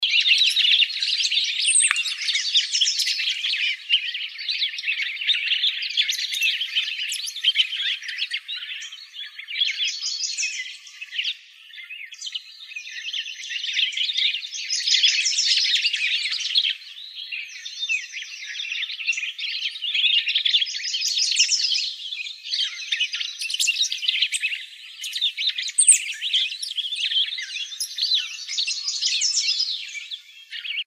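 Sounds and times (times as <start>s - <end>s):
Cassin's Finch calling: 0.0s - 12.2s, 13.0s - 30.8s.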